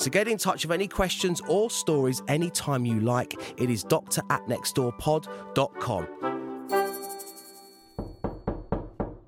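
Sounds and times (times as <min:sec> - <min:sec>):
speech: 0:00.0 - 0:06.3
sustained ringing tone: 0:06.7 - 0:08.4
firm knocking on a door: 0:08.0 - 0:09.2.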